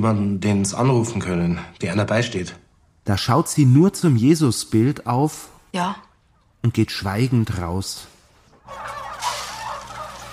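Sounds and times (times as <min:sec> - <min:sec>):
speech: 0:00.0 - 0:08.1
hundreds of turkeys gobbling and clucking in a fattening barn: 0:06.2 - 0:06.6, 0:08.4 - 0:10.3.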